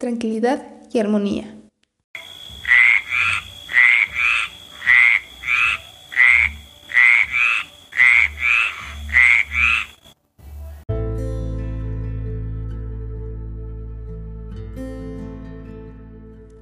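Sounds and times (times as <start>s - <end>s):
speech: 0.0s - 1.6s
frog croaking: 2.2s - 10.2s
sustained tonal music: 2.3s - 16.6s.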